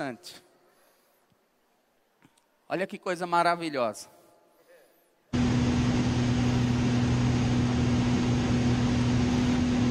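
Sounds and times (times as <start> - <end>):
speech: 0.0 - 0.4, 2.7 - 4.2
airplane cabin engine noise: 5.4 - 9.9.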